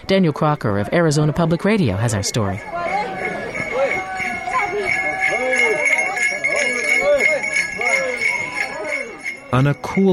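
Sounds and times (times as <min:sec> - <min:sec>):
speech: 0:00.1 - 0:03.2, 0:09.5 - 0:10.1
bells jingling in rhythm with footsteps: 0:01.8 - 0:10.1
footsteps: 0:02.6 - 0:09.5.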